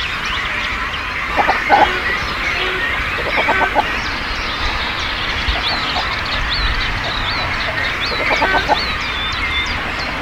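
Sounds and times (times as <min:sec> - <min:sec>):
cormorant colony calling: 0:00.4 - 0:10.2
cormorant harsh guttural croaks and grunts: 0:01.3 - 0:09.0.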